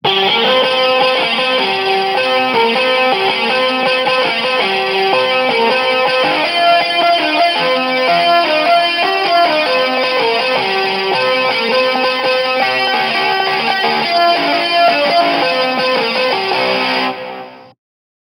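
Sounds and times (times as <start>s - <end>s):
fingerpicked guitar: 0.0s - 17.7s.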